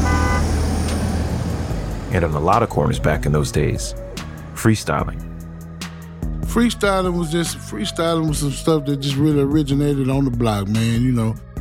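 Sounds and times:
car horn toot: 0.0 - 0.6
steady low rumble of city traffic: 0.0 - 10.5
speech: 2.1 - 4.0, 4.6 - 5.3, 6.5 - 11.5.

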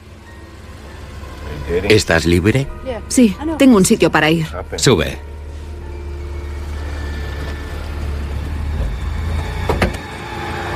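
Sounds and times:
car engine rumbling low as the car pulls away: 0.0 - 10.7
speech: 1.7 - 5.3.

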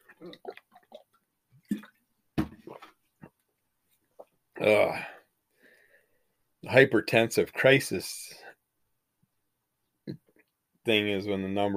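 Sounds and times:
person sipping water: 0.0 - 2.0, 2.6 - 3.4
wet slurping and swallowing: 0.0 - 2.0
speech: 4.6 - 5.1, 6.7 - 8.4, 10.9 - 11.7.

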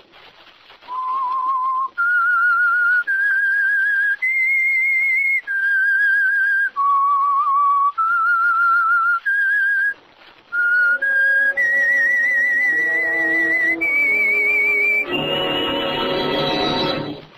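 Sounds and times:
whistled signal tune opening a sponsored program: 0.8 - 17.2
swelling orchestral chord: 12.7 - 17.3.

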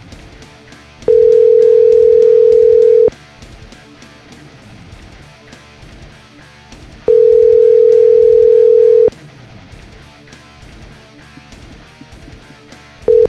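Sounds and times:
phone ringback tone of an unanswered call: 1.1 - 3.1, 7.1 - 9.1, 13.1 - 13.2.

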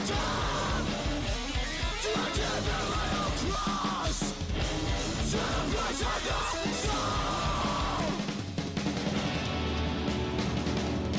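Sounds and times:
harsh screamed vocals in metal music: 0.0 - 8.3
distorted guitars: 0.0 - 11.1
rapid blast-beat drumming: 0.0 - 11.1.

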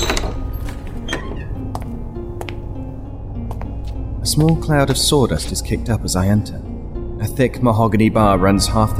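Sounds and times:
faint door creak: 0.0 - 2.1
speech: 4.3 - 8.9.

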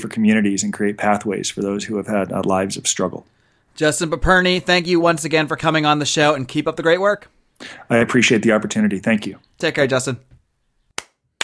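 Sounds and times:
speech: 0.0 - 10.3
person clapping hands: 10.9 - 11.4.

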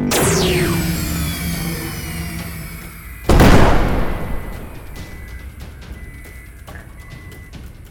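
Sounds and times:
weapons firing at an unidentified flying object, loud heavy blast rumbling: 0.1 - 5.3.

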